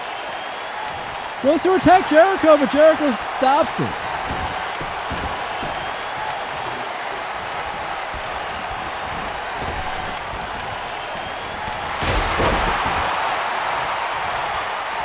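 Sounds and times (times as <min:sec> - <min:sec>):
arena crowd roar at a wrestling match: 0:00.0 - 0:15.0
speech: 0:01.4 - 0:04.1
steel chair striking a wrestler: 0:03.9 - 0:13.3.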